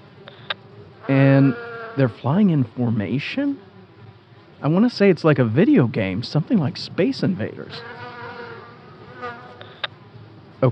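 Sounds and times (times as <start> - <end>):
dense swarm of killer bees buzzing: 0.0 - 10.7
speech: 1.1 - 3.7, 4.6 - 8.0.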